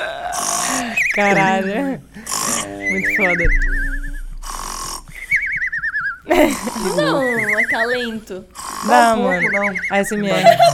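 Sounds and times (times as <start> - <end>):
sleeping man snoring rapidly with whistling exhale: 0.0 - 1.0, 2.2 - 3.0, 4.4 - 5.2, 8.6 - 9.1
speech: 1.2 - 3.8, 6.3 - 10.7
laughter: 6.3 - 7.9, 10.2 - 10.7.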